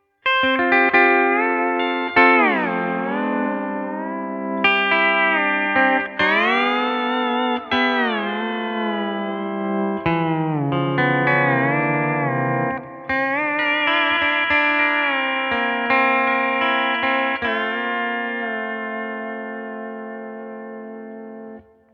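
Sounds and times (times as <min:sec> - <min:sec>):
AXE FX 3 Deluxe BA amp model sound: 0:01.2 - 0:21.6.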